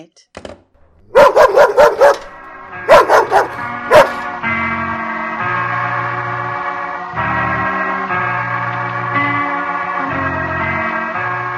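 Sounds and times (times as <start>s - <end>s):
speech: 0.0s - 0.6s, 1.4s - 4.0s
sustained music: 0.8s - 11.5s
small mongrel dog barking and yipping: 1.1s - 4.3s.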